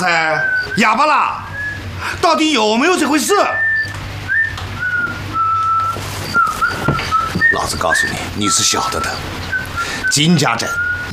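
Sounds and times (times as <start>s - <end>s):
speech: 0.0s - 4.0s, 7.6s - 11.1s
low hum: 0.0s - 11.1s
person whistling short clear notes: 3.6s - 11.1s.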